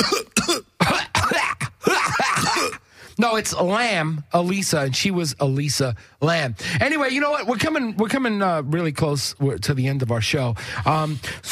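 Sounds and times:
harsh wet coughs: 0.0s - 2.9s
speech: 3.2s - 11.4s.

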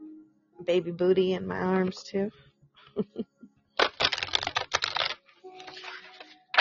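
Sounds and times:
speech: 0.6s - 3.1s
deck of large cards shuffling: 3.8s - 6.5s.

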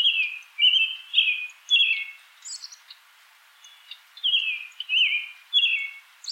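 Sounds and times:
American robin singing: 0.0s - 6.3s.

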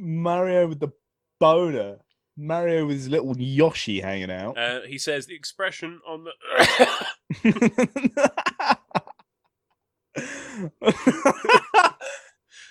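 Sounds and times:
speech: 0.2s - 8.8s, 10.2s - 12.2s
person coughing on a peanut caught in the throat: 6.4s - 7.3s
laughter: 6.5s - 9.3s, 10.8s - 12.2s.

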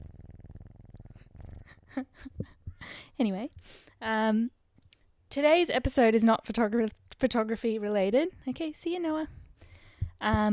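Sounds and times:
cat purring: 0.0s - 3.0s
speech: 1.9s - 4.6s, 5.3s - 9.4s, 10.2s - 10.5s.

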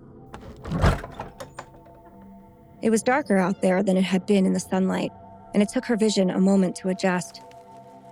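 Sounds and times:
faint creaks and clicks: 0.4s - 1.9s
heavy barn door scraping and rumbling as it slides open: 0.4s - 2.0s
speech: 2.8s - 7.5s.

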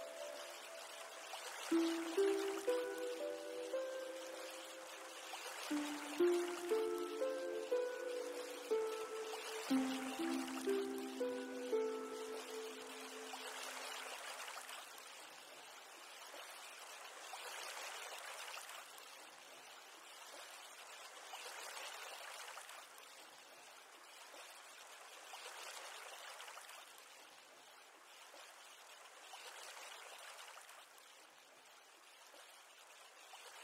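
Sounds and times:
soft tonal notes: 0.0s - 13.4s
sea waves recorded on a phone: 0.0s - 33.6s
speech: 1.7s - 1.9s.

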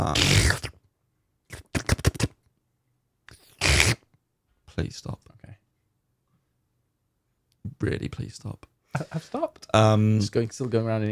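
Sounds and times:
speech: 0.0s - 0.7s, 4.8s - 5.3s, 7.8s - 11.0s
person vocally imitating a slurping gulping potion-drinking sound: 0.0s - 0.8s, 1.5s - 2.4s, 3.3s - 4.0s
laughter: 9.0s - 9.5s.

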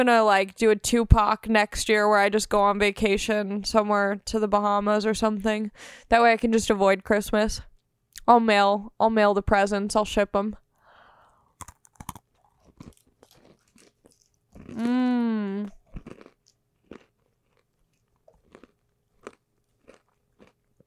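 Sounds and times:
speech: 0.0s - 10.6s, 14.8s - 15.8s
crunching of food being chewed: 11.4s - 20.8s.

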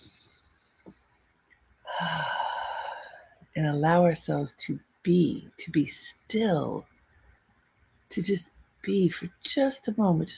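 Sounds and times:
big deep breath taken as a calming pause: 0.0s - 3.4s
speech: 3.6s - 6.9s, 8.1s - 10.3s.

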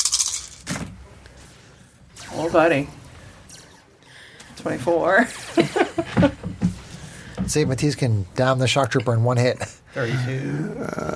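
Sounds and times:
damage dice tumbling across a hard tabletop during a tabletop game: 0.0s - 0.8s
speech: 2.3s - 3.0s, 4.6s - 6.5s, 7.5s - 11.1s.

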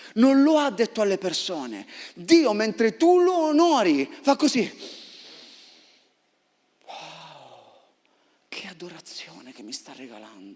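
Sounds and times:
speech: 0.2s - 5.0s, 8.8s - 10.5s
person imitating a deep drawn-out sniff: 4.8s - 6.1s.

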